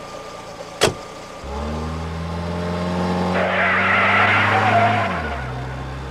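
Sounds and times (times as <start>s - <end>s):
car engine noise: 0.0s - 6.1s
sharp thump: 0.8s - 1.1s
car tires screeching as the car is driven fast through a turn in town: 0.8s - 6.1s.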